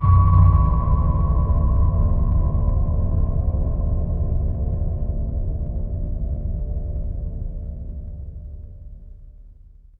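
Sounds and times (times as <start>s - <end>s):
horror stinger: 0.0s - 7.4s.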